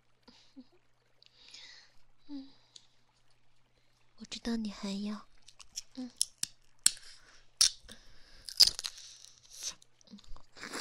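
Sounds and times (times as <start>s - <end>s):
speech: 4.3s - 5.3s, 6.0s - 6.2s
mouth sounds of eating jelly: 5.4s - 10.7s.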